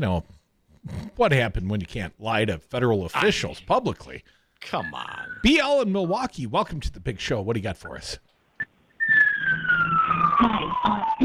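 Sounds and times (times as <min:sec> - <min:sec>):
speech: 0:00.0 - 0:08.3, 0:10.4 - 0:11.2
ambulance siren wailing: 0:04.8 - 0:05.6, 0:09.0 - 0:11.2.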